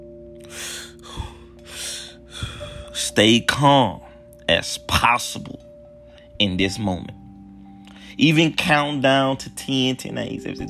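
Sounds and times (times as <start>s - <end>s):
deep breath drawn in slowly and let out: 0.4s - 3.0s
speech: 3.0s - 5.6s, 6.4s - 7.2s, 8.2s - 10.6s.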